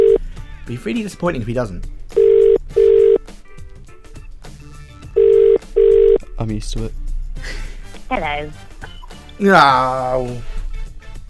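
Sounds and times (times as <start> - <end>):
telephone ringback tone: 0.0 - 0.2, 2.2 - 3.2, 5.2 - 6.2
speech: 0.7 - 2.0, 6.4 - 8.7, 9.4 - 10.5.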